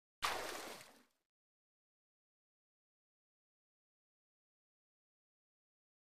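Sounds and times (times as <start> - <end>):
swimming arm strokes in water: 0.2 - 1.0.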